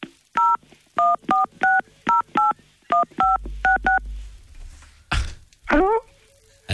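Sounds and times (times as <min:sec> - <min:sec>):
telephone keypad dialing tones: 0:00.4 - 0:04.0
low hum: 0:03.2 - 0:06.6
speech: 0:05.7 - 0:06.0.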